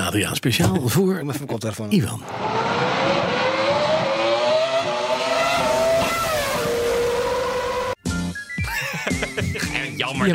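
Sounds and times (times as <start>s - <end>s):
speech: 0.1s - 3.2s, 10.1s - 10.3s
Ferrari 3-litre V10 Formula 1 engine revving: 2.2s - 8.0s
laughter: 8.6s - 10.1s.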